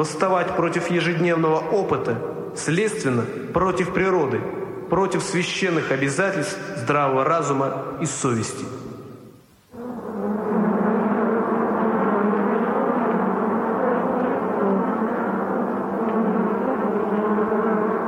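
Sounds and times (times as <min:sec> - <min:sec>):
speech: 0:00.0 - 0:08.8
swarm of flies buzzing: 0:09.7 - 0:18.0.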